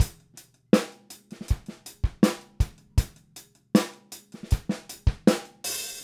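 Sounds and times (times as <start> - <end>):
R&B-pop drums at moderate tempo: 0.0 - 0.2, 1.4 - 3.2, 4.4 - 6.0.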